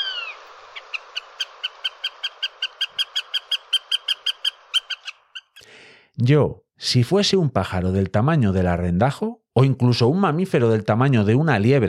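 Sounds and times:
northern goshawk cackling: 0:00.0 - 0:05.6
speech: 0:06.2 - 0:11.8.

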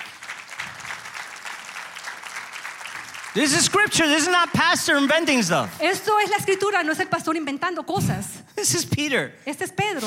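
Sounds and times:
church audience applauding during a sermon: 0:00.0 - 0:07.1
speech: 0:03.4 - 0:10.0.

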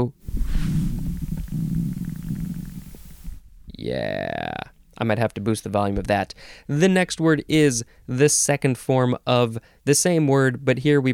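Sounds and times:
speech: 0:00.0 - 0:00.2, 0:03.8 - 0:11.1
stomach growling with a low bubbly rumble: 0:00.3 - 0:03.4.

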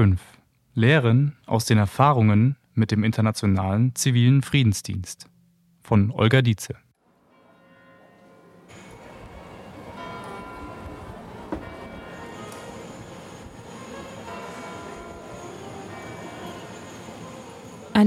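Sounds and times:
speech: 0:00.0 - 0:06.8
church bells ringing in a dense peal: 0:07.2 - 0:18.0
faint voices: 0:07.2 - 0:18.0
busy outdoor murmur: 0:08.7 - 0:18.0.

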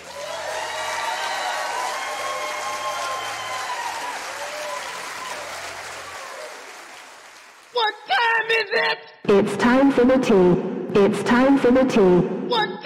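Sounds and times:
faint whoops and cheers: 0:00.0 - 0:06.8
audience applause: 0:00.0 - 0:07.8
speech: 0:07.8 - 0:12.8.

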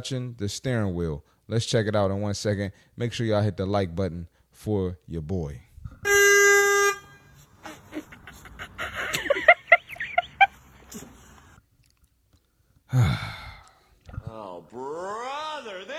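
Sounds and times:
speech: 0:00.0 - 0:05.7
car horn blast: 0:06.0 - 0:07.6
laughter: 0:07.6 - 0:11.5
breathy sigh: 0:12.9 - 0:14.2.

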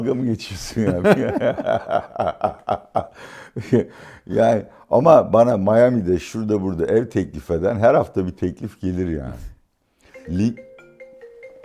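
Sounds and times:
speech: 0:00.0 - 0:09.5, 0:10.3 - 0:10.7
laughter: 0:00.7 - 0:03.9
mobile phone playing a melodic ringtone of electronic tones: 0:10.1 - 0:11.6.

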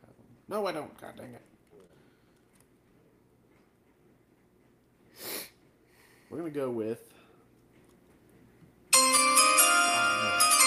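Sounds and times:
speech: 0:00.5 - 0:01.5, 0:06.3 - 0:07.2
draft bell ringing: 0:08.9 - 0:10.6.

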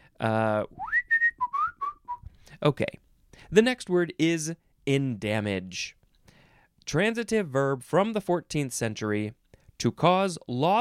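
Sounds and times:
speech: 0:00.2 - 0:00.8, 0:02.6 - 0:06.0, 0:06.9 - 0:10.7
person whistling: 0:00.7 - 0:02.3.

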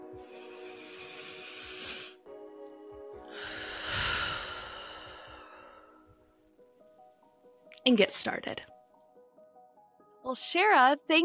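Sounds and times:
deep breaths: 0:00.0 - 0:02.3, 0:03.2 - 0:06.4
speech: 0:07.8 - 0:08.8, 0:10.3 - 0:11.2.

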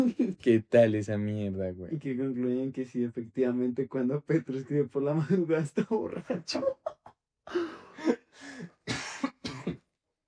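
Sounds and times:
speech: 0:00.0 - 0:06.9, 0:07.5 - 0:08.7
harsh chesty coughs with a throaty rasp: 0:07.9 - 0:10.0.

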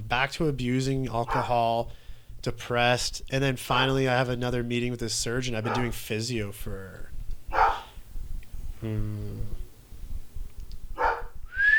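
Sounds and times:
low rumble: 0:00.0 - 0:11.7
speech: 0:00.1 - 0:07.1, 0:08.8 - 0:09.6
dog barking: 0:01.3 - 0:01.5, 0:05.6 - 0:06.0, 0:07.5 - 0:08.0, 0:11.0 - 0:11.3.

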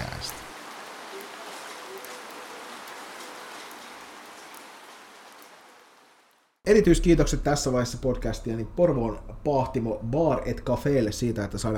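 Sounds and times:
steady rain falling: 0:00.0 - 0:06.6
speech: 0:06.7 - 0:11.7.

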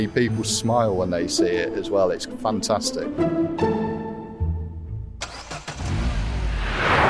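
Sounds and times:
speech: 0:00.0 - 0:03.8
big old vintage bus engine cranking, starting and revving: 0:05.2 - 0:07.0.

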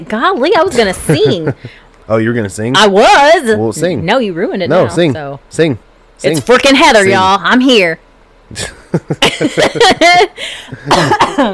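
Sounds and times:
speech: 0:00.0 - 0:11.5
laughter: 0:00.7 - 0:01.8, 0:08.6 - 0:11.2
person coughing harshly: 0:10.8 - 0:11.5.

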